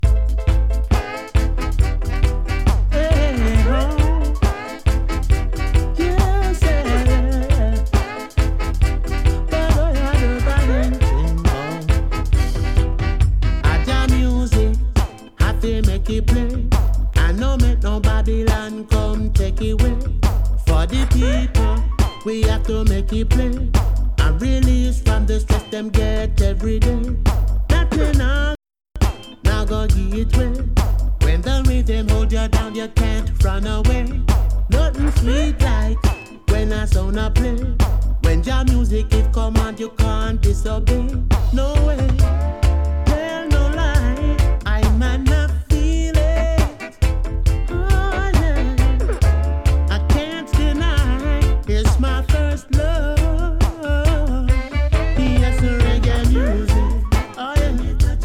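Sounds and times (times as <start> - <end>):
reggae music: 0.0 - 58.2.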